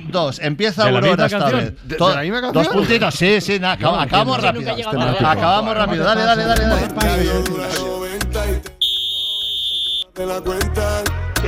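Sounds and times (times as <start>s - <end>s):
speech: 0.1s - 8.3s, 10.2s - 11.4s
loud music: 6.5s - 8.9s, 10.1s - 11.4s
high-pitched beep: 8.8s - 10.1s.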